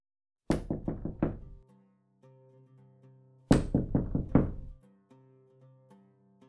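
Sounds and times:
firm rapid knocking on a house door: 0.5s - 1.6s, 3.5s - 4.8s.

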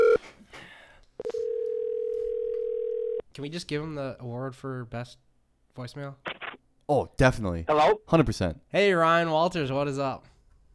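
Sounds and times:
telephone dial tone during an outgoing call: 0.0s - 0.2s, 1.2s - 3.2s
speech: 3.4s - 6.3s, 6.9s - 10.3s.

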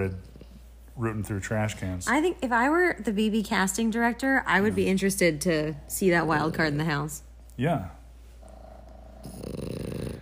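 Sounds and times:
speech: 0.0s - 0.3s, 1.0s - 8.0s
two dogs snoring: 0.0s - 0.8s, 4.4s - 7.1s, 8.3s - 10.2s.

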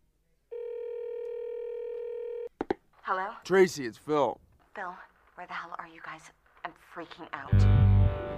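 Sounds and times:
telephone tone: 0.5s - 2.5s
speech: 3.1s - 8.3s.

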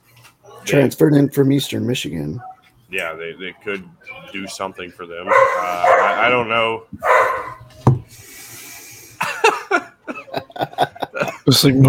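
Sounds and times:
speech: 0.6s - 7.4s, 11.5s - 11.8s
dog barking: 5.3s - 6.4s, 7.0s - 7.7s
laughter: 8.5s - 11.8s.

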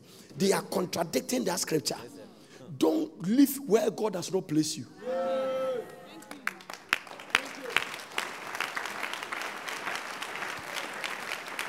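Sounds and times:
speech: 0.4s - 5.1s
crowd applauding: 5.8s - 11.6s
louder individual claps: 6.3s - 11.6s.

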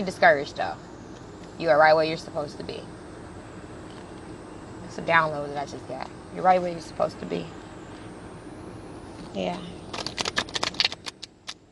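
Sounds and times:
speech: 0.0s - 0.9s, 1.6s - 3.0s, 5.0s - 7.6s, 9.3s - 10.0s
deck of playing cards being shuffled: 9.9s - 11.6s.

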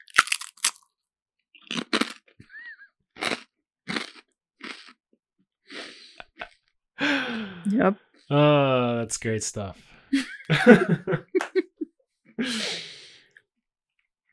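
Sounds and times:
crunchy chewing close to the microphone: 0.0s - 0.9s, 1.6s - 2.4s, 3.2s - 5.0s
speech: 7.7s - 11.2s
laughter: 10.1s - 12.9s.

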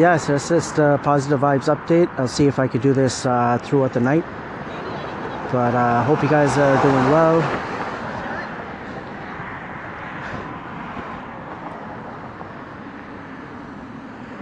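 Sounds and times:
speech: 0.0s - 4.8s, 5.5s - 7.7s
traffic rumble on a busy main street: 0.0s - 14.4s.

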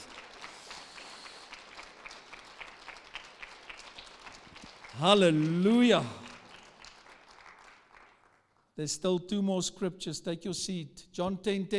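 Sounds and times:
audience clapping: 0.0s - 8.8s
speech: 5.0s - 6.2s, 8.8s - 11.7s.

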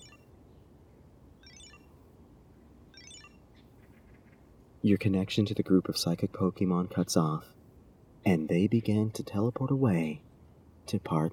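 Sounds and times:
phone ringing inside a backpack: 0.0s - 0.2s, 1.4s - 2.0s, 3.0s - 3.4s
speech: 4.8s - 7.6s, 8.2s - 10.3s, 10.9s - 11.3s.

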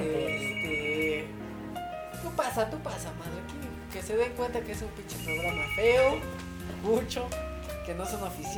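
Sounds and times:
telephone ringtone announcing an incoming call: 0.0s - 1.3s, 5.1s - 6.3s
speech: 2.6s - 3.3s, 4.0s - 8.5s.

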